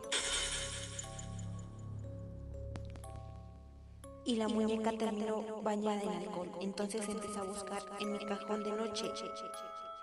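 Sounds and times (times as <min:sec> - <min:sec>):
glass wine bottle shattering: 0:00.1 - 0:01.4
tinkling glass debris: 0:00.1 - 0:01.5
speech: 0:04.3 - 0:09.9.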